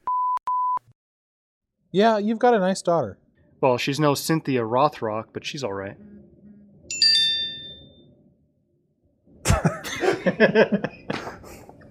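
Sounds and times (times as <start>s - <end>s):
speech: 1.9s - 6.2s, 10.2s - 11.2s
phone notification ding: 6.9s - 8.0s
person laughing loudly: 9.4s - 11.6s.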